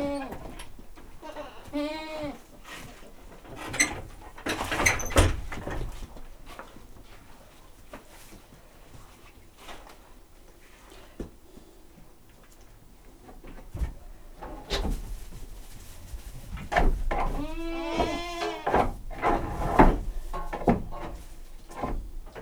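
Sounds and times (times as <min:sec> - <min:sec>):
domestic goat bleating in a farmyard: 0:00.0 - 0:02.6, 0:17.2 - 0:18.8
knocks and rustles: 0:02.8 - 0:10.1, 0:13.2 - 0:22.4.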